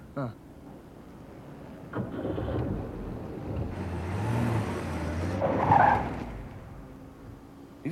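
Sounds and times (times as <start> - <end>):
car engine rumbling as it turns in and swerves on a street: 0.4 - 7.9.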